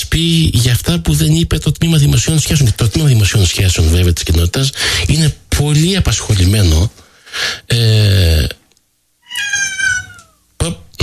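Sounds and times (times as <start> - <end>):
speech: 0.0 - 8.6, 10.6 - 11.0
cat meowing and yowling: 9.2 - 10.4.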